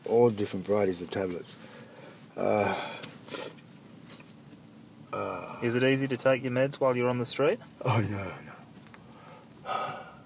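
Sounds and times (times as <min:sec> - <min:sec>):
speech: 0:00.1 - 0:01.8, 0:02.4 - 0:03.4, 0:05.2 - 0:08.6
heavy labored gasping breath: 0:01.6 - 0:03.6, 0:08.1 - 0:10.2.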